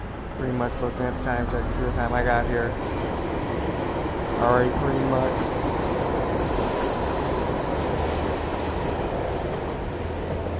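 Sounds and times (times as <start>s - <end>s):
train rumbling past: 0.0s - 10.5s
speech: 0.4s - 3.1s, 4.4s - 5.6s
high sustained metallic train wheel squeals: 1.8s - 2.8s.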